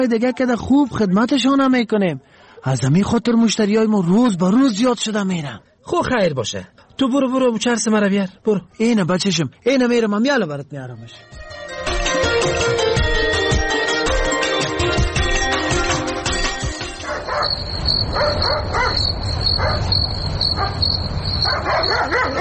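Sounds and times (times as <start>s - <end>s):
speech: 0.0s - 11.6s, 17.9s - 22.4s
dense tonal music-like sound: 11.1s - 17.2s
steady high insect-like chirr: 16.8s - 22.4s
dog barking in short loud bursts: 17.0s - 19.9s, 20.6s - 20.8s, 21.4s - 22.4s.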